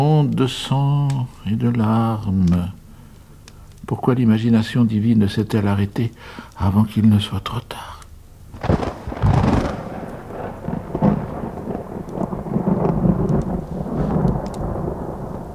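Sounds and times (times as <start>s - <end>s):
speech: 0.0s - 2.8s, 3.9s - 7.9s
steady rain: 0.0s - 15.5s
heavy rolling thunder: 8.5s - 15.5s.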